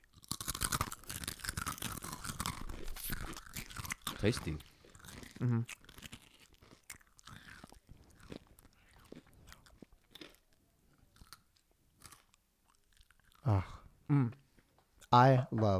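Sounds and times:
crunching and chewing a thin rice cracker: 0.0 - 13.5
speech: 4.2 - 4.7, 5.4 - 5.8, 15.1 - 15.7
mouth noises: 5.4 - 5.7, 13.4 - 14.4.

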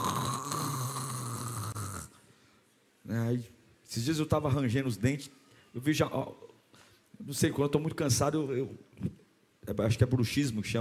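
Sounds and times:
person imitating a rasping snore: 0.0 - 2.2
speech: 3.1 - 6.4, 7.2 - 10.7.

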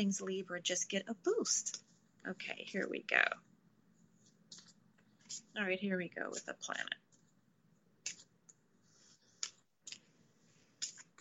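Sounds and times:
speech: 0.0 - 3.5, 5.3 - 7.0
deck of oracle cards being shuffled: 4.2 - 5.6, 8.0 - 11.1.

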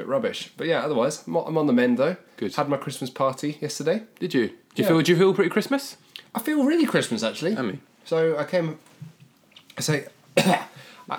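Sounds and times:
speech: 0.1 - 8.9, 9.8 - 11.1
harsh chesty coughing clearing phlegm from a cold: 10.4 - 11.0.

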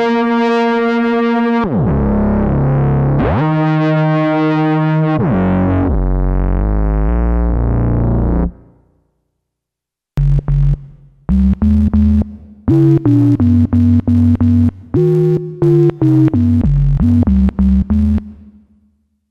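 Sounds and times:
buzzy distorted solo synthesizer notes gliding through pitch sweeps: 0.0 - 8.8, 10.2 - 18.9
short choppy solo synthesizer notes in a repeating melodic pattern: 10.2 - 19.0.

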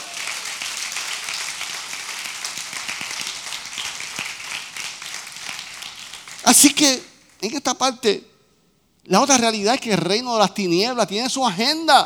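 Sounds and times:
audience applause: 0.0 - 6.8
speech: 6.5 - 8.3, 9.0 - 12.0.

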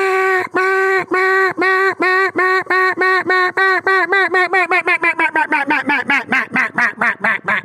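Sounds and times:
single reed duck call blowing a mallard highball sequence: 0.0 - 7.6.

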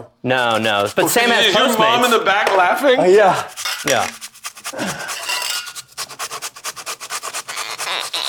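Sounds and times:
speech: 0.0 - 5.1
food being grated on a kitchen shredder: 0.4 - 1.9, 3.4 - 8.2.

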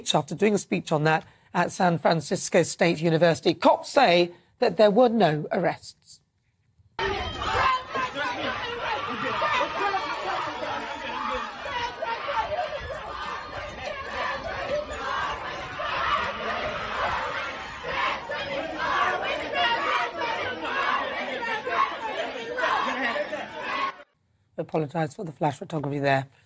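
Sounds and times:
speech: 0.0 - 6.0, 24.6 - 26.4
dense crowd of activists shouting and yelling: 7.0 - 24.0
laughter: 8.0 - 11.3, 22.2 - 23.9.

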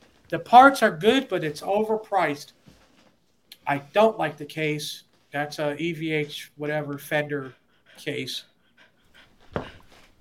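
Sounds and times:
speech: 0.3 - 2.6, 3.7 - 8.5
dog panting: 6.7 - 10.2.

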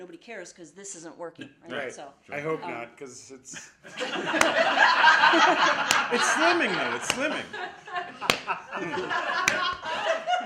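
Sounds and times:
speech: 0.0 - 10.0
laughter: 3.5 - 10.4
hand slapping a solid surface: 4.2 - 4.7, 5.8 - 7.5, 8.2 - 10.0.

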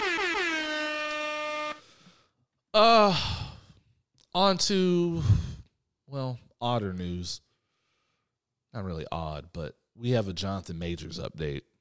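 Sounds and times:
air horn blasts: 0.0 - 2.1
speech: 2.8 - 3.4, 4.4 - 7.5, 8.7 - 11.7.

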